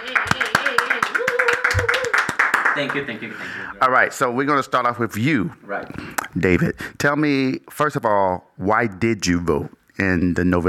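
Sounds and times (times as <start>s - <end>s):
scattered hand claps: 0.0s - 3.1s
speech: 2.8s - 10.6s.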